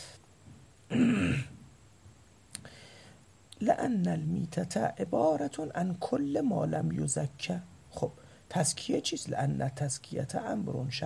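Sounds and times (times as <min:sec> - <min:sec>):
short rough throat clearing: 0:00.9 - 0:01.6
speech: 0:03.6 - 0:11.0.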